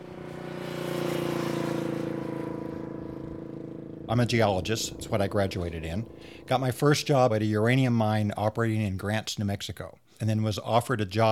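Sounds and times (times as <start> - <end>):
car engine humming from inside the driving vehicle: 0.0 - 8.8
speech: 4.1 - 11.3.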